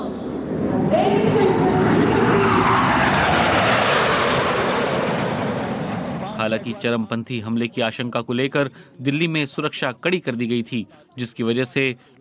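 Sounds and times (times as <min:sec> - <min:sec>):
military jets roaring overhead in a parade flypast: 0:00.0 - 0:06.9
speech: 0:06.5 - 0:12.1.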